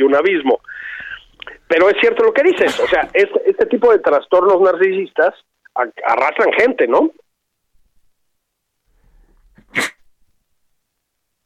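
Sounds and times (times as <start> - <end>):
speech: 0.0 - 0.8, 1.7 - 7.2, 9.7 - 10.0
quiet intake of breath: 0.6 - 1.7, 8.9 - 9.6
sharp sneeze: 9.6 - 10.0.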